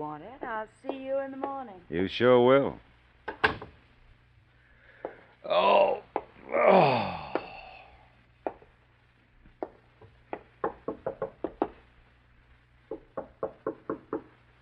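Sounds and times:
speech: 0:00.0 - 0:03.4, 0:05.4 - 0:07.0
knocking on a wooden apartment front door: 0:09.6 - 0:11.8, 0:12.9 - 0:14.3.

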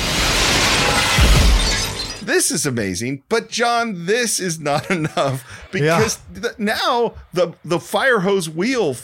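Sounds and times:
window glass shattering: 0:00.0 - 0:02.3
speech: 0:02.4 - 0:09.0
laughter: 0:04.5 - 0:07.0.

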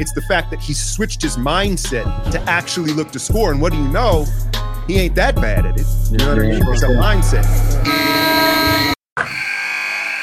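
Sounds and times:
speech: 0:00.0 - 0:08.2
loud harsh game-ending buzzer blasts: 0:07.8 - 0:10.2.

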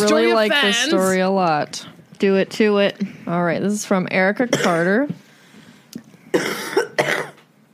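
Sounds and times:
speech: 0:00.0 - 0:05.2, 0:06.3 - 0:06.6
harsh rasping coughs: 0:04.5 - 0:05.0, 0:06.3 - 0:07.5.

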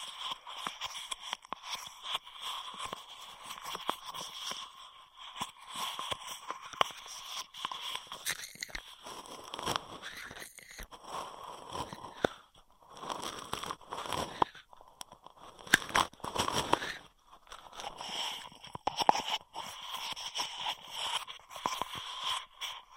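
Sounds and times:
crackly plastic straw clicks, taps and crinkles: 0:00.0 - 0:22.9
rustling: 0:05.9 - 0:20.2.

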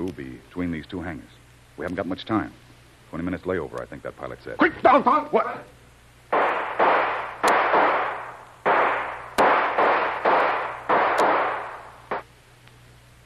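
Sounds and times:
speech: 0:00.1 - 0:05.8
gunshots near hangars at an airfield: 0:06.3 - 0:12.3.

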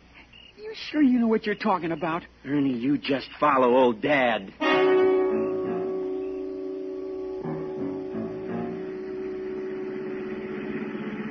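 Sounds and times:
speech: 0:00.6 - 0:04.9
car engine humming: 0:05.0 - 0:11.2.

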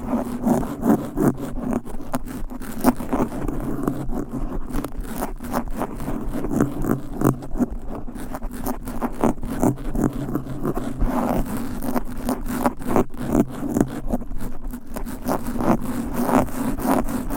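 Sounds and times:
fast aggressive scratching against a microphone: 0:00.0 - 0:17.3.

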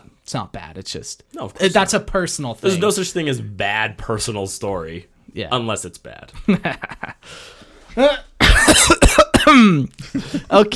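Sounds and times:
speech: 0:00.3 - 0:08.2, 0:09.5 - 0:10.7
person clearing their throat into a microphone: 0:08.0 - 0:09.9.

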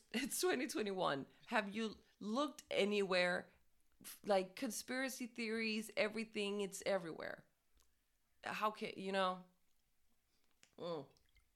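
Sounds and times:
speech: 0:00.1 - 0:07.5, 0:08.4 - 0:09.5, 0:10.8 - 0:11.2
sipping bottled water: 0:09.7 - 0:11.5.

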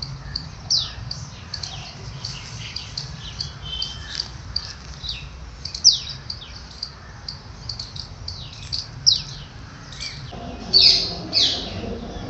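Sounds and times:
several birds chirping and tweeting: 0:00.0 - 0:12.2
low steady rumble: 0:10.3 - 0:12.2.

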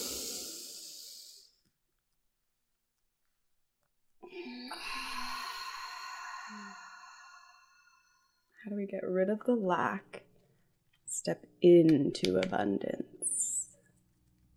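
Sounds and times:
deep breathing: 0:00.0 - 0:01.5, 0:04.2 - 0:08.5
speech: 0:08.6 - 0:10.2, 0:11.2 - 0:13.2.

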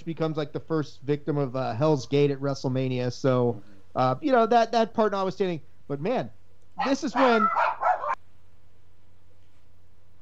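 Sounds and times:
speech: 0:00.0 - 0:07.6
dog barking: 0:06.8 - 0:08.2.

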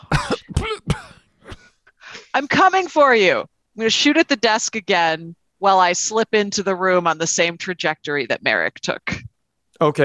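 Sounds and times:
person coughing and sputtering as if acting out a choking fit: 0:00.0 - 0:01.8
speech: 0:02.4 - 0:09.2, 0:09.8 - 0:10.0.

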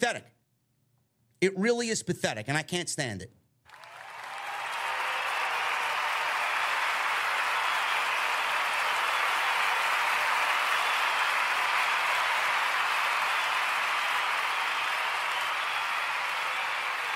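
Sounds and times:
speech: 0:00.0 - 0:00.3, 0:01.4 - 0:03.4
sustained applause from a large crowd: 0:03.7 - 0:17.1.

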